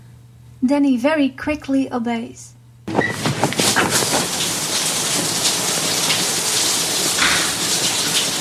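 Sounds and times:
speech: 0.7s - 2.5s
shower water running: 2.9s - 8.3s.

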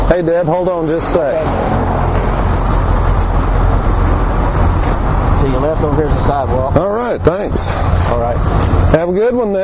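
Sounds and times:
speech: 0.2s - 1.9s, 5.5s - 9.6s
car driving past on a street: 0.9s - 5.5s.

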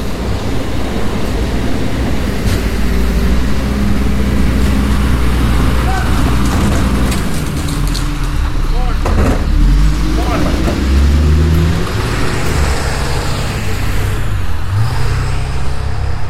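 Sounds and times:
people talking: 0.0s - 7.3s, 8.2s - 11.2s
rattling: 0.0s - 15.2s
garbage truck engine rumbling past: 0.0s - 16.2s.

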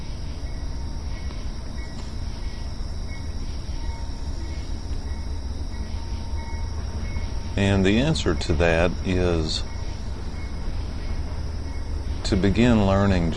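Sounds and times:
faint metallic ringing: 0.0s - 13.3s
high insect-like hiss: 0.0s - 13.3s
train rumbling past on the rails: 2.1s - 13.3s
speech: 7.6s - 9.7s, 12.3s - 13.3s.

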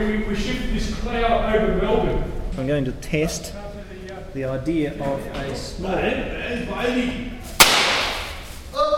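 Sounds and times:
speech: 0.0s - 3.6s, 4.4s - 7.4s
small firecracker bang: 7.6s - 8.6s.

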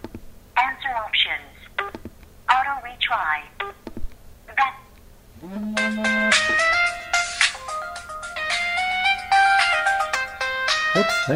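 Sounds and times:
low steady hum: 0.0s - 11.3s
speech: 2.9s - 3.8s, 5.4s - 6.4s, 11.0s - 11.3s
melodic phone ringtone for incoming call: 5.8s - 11.3s.

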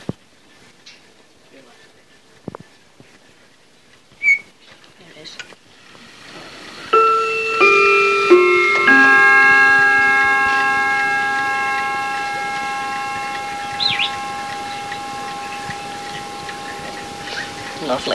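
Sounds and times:
mantel clock ticking faintly: 6.9s - 18.1s.

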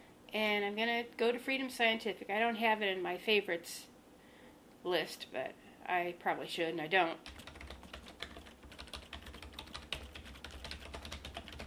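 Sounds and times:
speech: 0.3s - 3.9s, 4.8s - 7.4s
typing on a computer keyboard: 7.2s - 11.6s.

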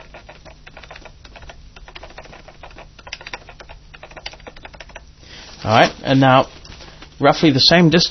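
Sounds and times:
keys typing on a braille notetaker keyboard: 0.0s - 5.1s
faint electrical hum: 0.0s - 8.1s
speech: 5.6s - 6.6s, 7.2s - 8.1s.

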